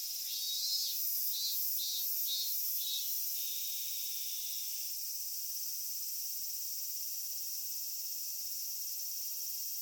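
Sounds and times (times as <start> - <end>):
Robust cicada Hyalessa maculaticollis song in thickets: 0.0 - 9.8.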